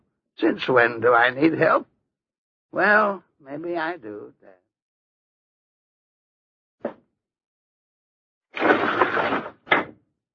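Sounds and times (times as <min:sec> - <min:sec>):
speech: 0:00.4 - 0:01.9, 0:02.7 - 0:04.6
wooden window scraping as it slides: 0:08.6 - 0:09.9.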